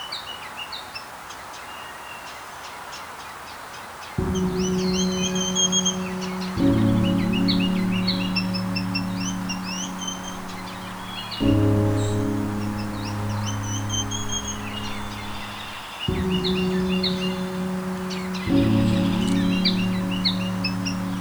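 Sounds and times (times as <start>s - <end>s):
low droning hum: 4.2s - 21.1s
ruby-crowned kinglet singing: 4.2s - 21.1s.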